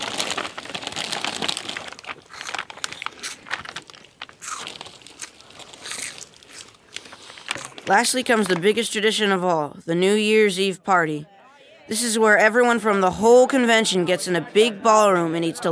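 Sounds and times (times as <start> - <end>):
jerky being torn off with ripping and crinkling: 0.0 - 7.9
crunching and chewing cheese puffs: 0.0 - 8.0
speech: 7.9 - 11.3, 11.9 - 15.7.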